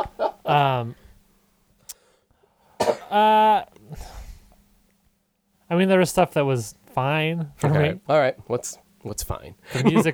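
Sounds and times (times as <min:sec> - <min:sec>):
speech: 0:00.0 - 0:01.1, 0:03.1 - 0:04.1, 0:05.7 - 0:10.1
faint breaths: 0:00.9 - 0:02.8, 0:03.8 - 0:04.7
rasping throaty coughs: 0:02.8 - 0:03.6.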